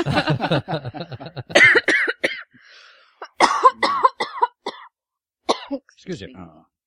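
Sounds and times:
speech: 0:00.0 - 0:01.4, 0:06.1 - 0:06.7
laughter: 0:00.0 - 0:01.6
person coughing harshly: 0:01.5 - 0:02.5, 0:03.2 - 0:04.9, 0:05.5 - 0:05.8.

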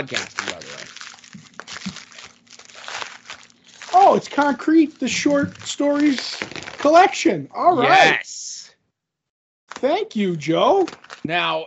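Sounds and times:
speech: 0:00.0 - 0:00.8, 0:04.1 - 0:08.5, 0:09.8 - 0:11.6
paper wrapping rubbing and crinkling against a microphone: 0:00.0 - 0:07.1.

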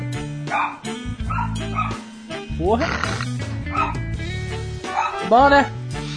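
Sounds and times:
dog barking and yipping with whiny pitched yelps: 0:00.5 - 0:02.1, 0:03.7 - 0:04.0, 0:04.9 - 0:05.3
speech: 0:02.6 - 0:03.4, 0:05.3 - 0:05.8.

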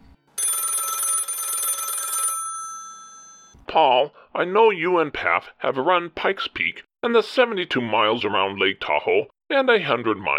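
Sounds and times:
telephone bell ringing: 0:00.4 - 0:03.6
speech: 0:03.7 - 0:10.3.

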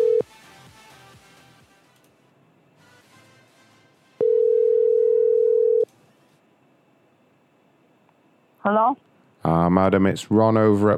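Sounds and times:
loud steady telephone tone: 0:00.0 - 0:00.3, 0:04.2 - 0:05.9
speech: 0:08.7 - 0:09.1, 0:09.7 - 0:10.9.

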